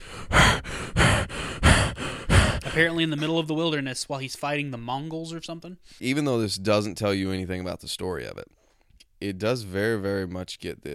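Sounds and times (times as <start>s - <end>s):
man breathing heavily into a microphone: 0.0s - 3.0s
speech: 2.8s - 8.6s, 9.2s - 10.9s.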